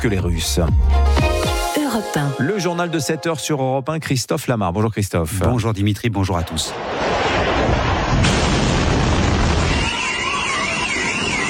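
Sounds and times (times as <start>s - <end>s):
speech: 0.0s - 1.3s, 1.9s - 7.3s
heavy rumbling explosion with a sharp blast: 6.4s - 11.4s
wailing siren: 8.8s - 11.4s.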